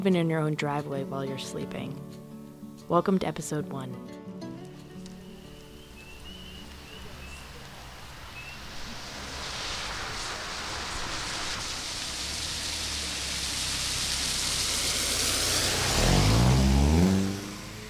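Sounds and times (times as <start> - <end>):
speech: 0.0 - 2.2, 2.9 - 4.2
rain pattering on a car windshield on a spring evening in Keene, New Hampshire: 5.1 - 17.2
low engine-like rumble: 5.1 - 17.8.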